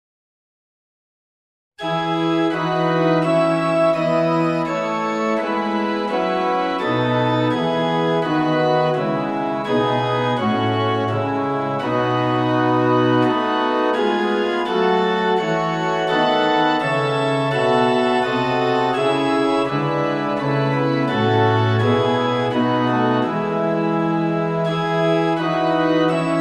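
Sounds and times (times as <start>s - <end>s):
instrumental music: 1.8s - 26.4s.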